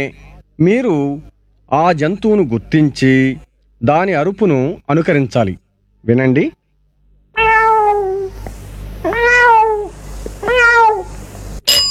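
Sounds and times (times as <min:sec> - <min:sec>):
speech: 0:00.0 - 0:06.6
cat meowing loudly: 0:07.4 - 0:08.4, 0:09.0 - 0:11.2.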